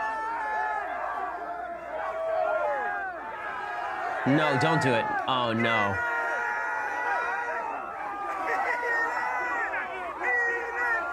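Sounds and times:
dense crowd shouting and cheering: 0:00.0 - 0:11.1
speech: 0:04.2 - 0:06.1.

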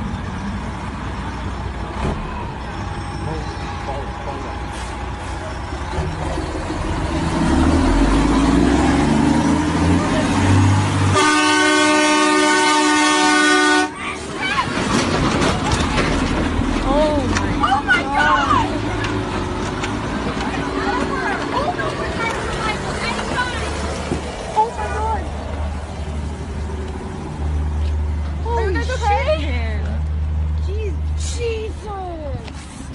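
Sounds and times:
heavy livestock truck engine rumbling at a slaughterhouse: 0:00.0 - 0:32.9
street noise: 0:00.0 - 0:32.9
livestock truck air horn blaring: 0:11.1 - 0:14.0.

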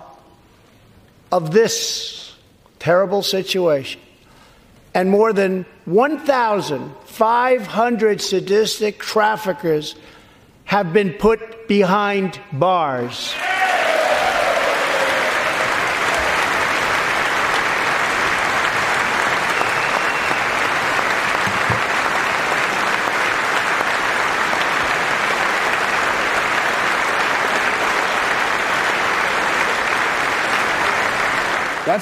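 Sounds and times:
speech: 0:01.3 - 0:02.2, 0:02.8 - 0:04.1, 0:05.0 - 0:13.5
large crowd applauding after a speech: 0:13.3 - 0:32.0.

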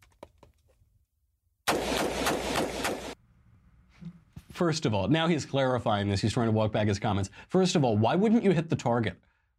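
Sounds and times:
rapid semi-automatic firearm gunfire: 0:01.7 - 0:03.2
speech: 0:04.6 - 0:09.5.

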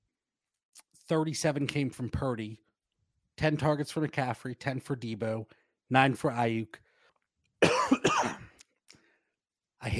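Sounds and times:
speech: 0:01.1 - 0:02.7, 0:03.4 - 0:06.8
harsh cough: 0:07.6 - 0:08.6
throat clearing: 0:07.6 - 0:08.6.

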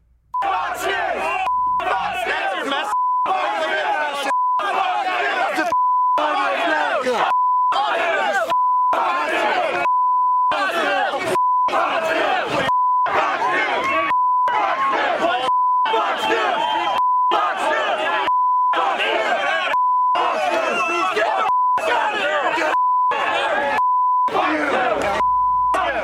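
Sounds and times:
loud agitated mob shouting and chanting: 0:00.4 - 0:26.0
steady censor bleeps: 0:01.4 - 0:03.6, 0:04.2 - 0:04.7, 0:05.7 - 0:06.4, 0:07.3 - 0:07.8, 0:08.5 - 0:09.0, 0:09.8 - 0:10.6, 0:11.4 - 0:11.8, 0:12.7 - 0:13.2, 0:14.0 - 0:14.6, 0:15.4 - 0:15.9, 0:16.5 - 0:17.4, 0:18.2 - 0:18.8, 0:19.7 - 0:22.1, 0:22.7 - 0:23.2, 0:23.8 - 0:24.3, 0:25.2 - 0:26.0.

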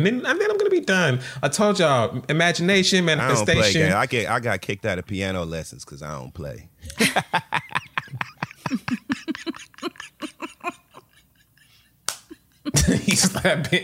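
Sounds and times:
speech: 0:00.0 - 0:08.3, 0:12.8 - 0:13.8
loud voiced bursts like laughter: 0:06.9 - 0:13.8
hand slapping a knee: 0:12.1 - 0:12.4.

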